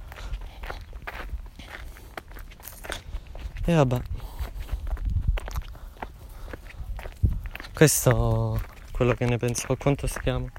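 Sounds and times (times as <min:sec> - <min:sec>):
footsteps crunching along a roadside: 0:00.0 - 0:10.5
speech: 0:03.7 - 0:04.1, 0:07.8 - 0:10.5.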